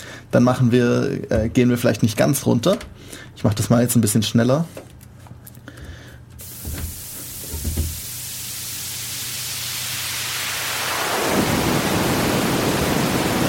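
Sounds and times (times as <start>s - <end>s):
speech: 0.3s - 4.9s
synthesized rain-like noise hissing: 6.4s - 13.4s.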